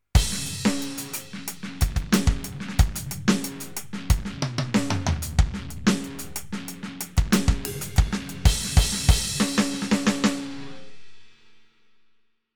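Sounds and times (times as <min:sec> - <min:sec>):
distorted electronic drum kit: 0:00.2 - 0:10.5.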